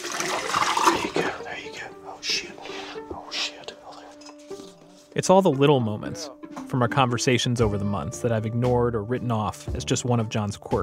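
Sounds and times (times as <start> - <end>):
potassium cyanide poured into a bucket: 0.0 - 1.4
soft whispering voice: 1.2 - 4.3
speech: 5.2 - 10.8.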